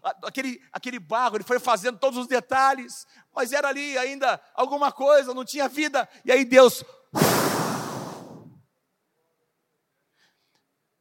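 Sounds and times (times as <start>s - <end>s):
speech: 0.1s - 7.7s
voice imitating a long breath being blown out: 7.2s - 8.6s.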